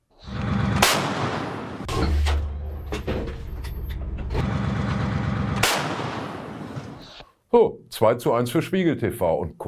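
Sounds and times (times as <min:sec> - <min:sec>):
clattering mechanical noise: 0:00.2 - 0:07.2
howitzer artillery blasts: 0:00.6 - 0:02.3, 0:04.4 - 0:07.1
speech: 0:07.5 - 0:09.6.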